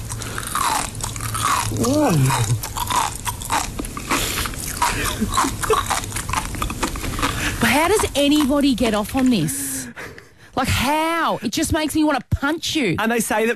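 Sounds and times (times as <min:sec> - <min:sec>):
crisp chewing of sea grapes: 0:00.0 - 0:09.5
person murmuring: 0:01.7 - 0:02.6
speech: 0:01.7 - 0:02.7, 0:05.2 - 0:06.1, 0:07.6 - 0:09.6, 0:10.6 - 0:13.5.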